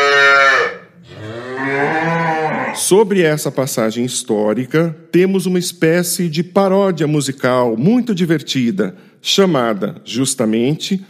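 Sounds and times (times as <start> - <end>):
cow mooing: 0.0 - 2.8
speech: 2.9 - 11.0.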